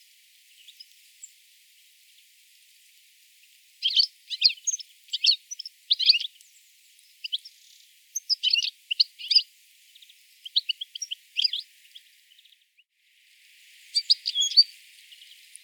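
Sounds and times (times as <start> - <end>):
European Goldfinch Carduelis carduelis twittering in sharp metallic chirps: 3.8 - 6.3, 8.2 - 9.4, 10.4 - 11.6, 14.0 - 14.8.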